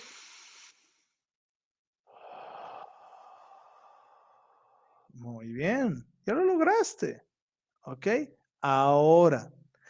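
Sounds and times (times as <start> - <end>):
deep breath in and out during a guided breathing exercise: 2.0 - 5.2
speech: 5.2 - 9.6.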